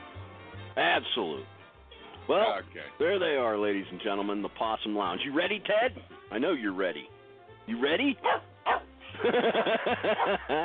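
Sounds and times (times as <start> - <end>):
speech: 0.8 - 1.6, 2.3 - 8.5, 9.2 - 10.6
dog barking: 8.2 - 8.9, 10.1 - 10.4
laughter: 9.0 - 10.6.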